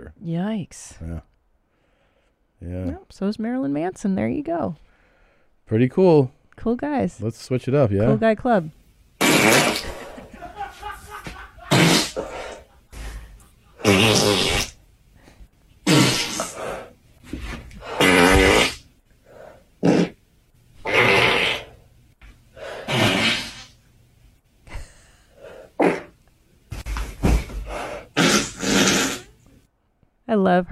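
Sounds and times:
speech: 0.2 - 1.3, 2.6 - 4.9, 5.7 - 8.8, 9.4 - 9.9, 30.5 - 30.7
woman farting: 9.2 - 10.2, 11.7 - 12.6, 13.8 - 14.8, 15.8 - 18.9, 19.8 - 20.2, 20.8 - 21.8, 22.8 - 23.8, 25.8 - 27.5, 28.1 - 29.4
laughter: 9.6 - 14.0.

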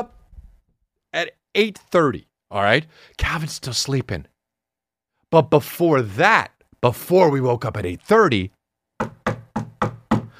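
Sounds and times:
speech: 1.2 - 4.3, 5.3 - 9.2
firm knocks on a wooden door: 9.0 - 10.3.

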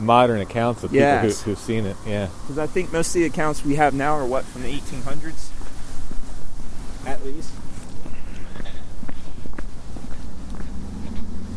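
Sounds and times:
speech: 0.0 - 5.6, 7.0 - 7.6
footsteps walking across a road: 4.6 - 11.5.

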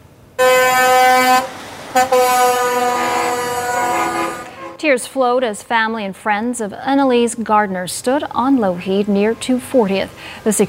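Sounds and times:
truck air horns honking in support: 0.4 - 5.0
speech: 2.0 - 2.2, 4.9 - 10.6.

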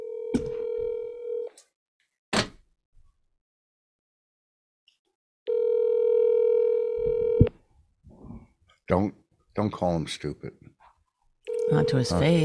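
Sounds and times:
outgoing phone call electronic ringing tone: 0.0 - 1.5, 5.5 - 7.5, 11.5 - 12.4
speech: 8.9 - 10.8, 11.7 - 12.4.

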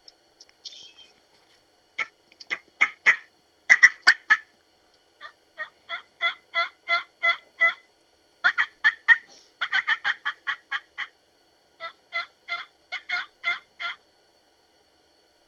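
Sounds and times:
raspy turkey yelps blown on a VCO three-reed mouth call: 2.0 - 4.5, 5.2 - 11.1, 11.8 - 14.0.

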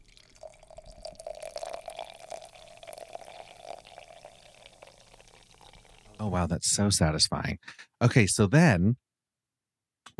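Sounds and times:
LaCroix sparkling water poured over berries: 0.0 - 6.5
speech: 6.2 - 9.0.

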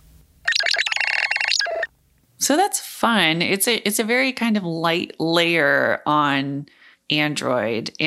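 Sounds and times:
chirpy electronic Android phone ringtone with retro dot-matrix theme: 0.5 - 1.9
speech: 2.5 - 8.0.

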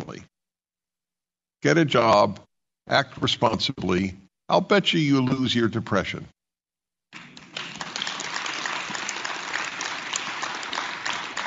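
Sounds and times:
speech: 1.6 - 6.4
religious audience applauding: 7.2 - 11.4.

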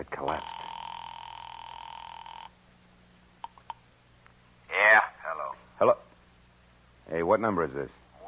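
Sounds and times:
telephone ring through a phone line from a phone booth: 0.3 - 2.6
speech: 7.3 - 8.0.

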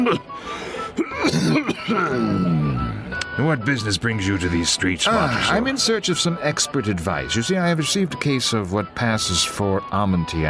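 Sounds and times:
person with a slight chest affliction coughing: 0.0 - 0.3, 1.0 - 2.4
strained voiced throat clearing: 0.0 - 0.3, 1.0 - 3.0
speech: 0.0 - 2.8, 3.4 - 10.4.

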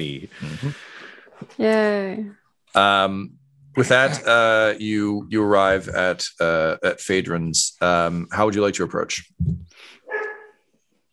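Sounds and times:
speech: 0.0 - 10.2
dog barking: 10.1 - 10.6.

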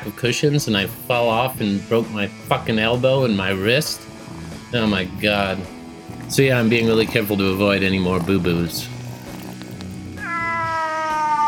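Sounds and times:
speech: 0.0 - 4.1, 4.7 - 8.9
cat meowing: 10.2 - 11.4.

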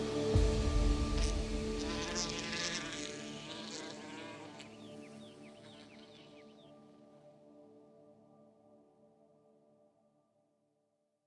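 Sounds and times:
wasp buzzing: 0.1 - 6.4.

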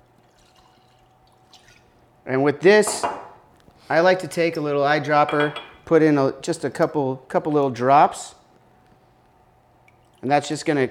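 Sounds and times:
Islay whisky pouring into a glass: 0.0 - 2.0
speech: 2.3 - 3.2, 3.9 - 8.4, 10.2 - 10.8.

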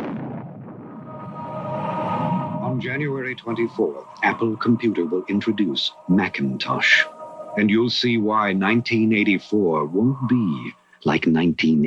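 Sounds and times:
TV screen exploding after a hammer is thrown at it: 0.0 - 7.0
faint tonal hum: 1.1 - 11.4
speech: 2.8 - 11.8.

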